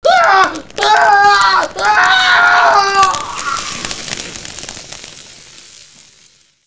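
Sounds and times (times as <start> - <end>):
male actor's death cry in flames: 0.0 - 4.1.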